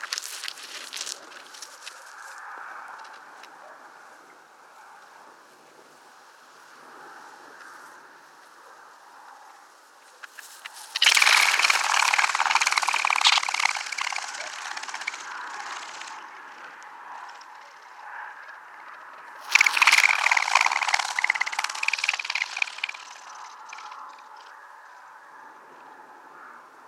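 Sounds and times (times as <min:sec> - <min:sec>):
partridge call: 0:10.2 - 0:16.3, 0:19.4 - 0:24.3.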